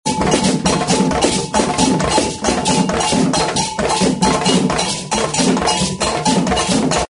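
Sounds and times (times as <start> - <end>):
African celebration rhythm: 0.0 - 7.1.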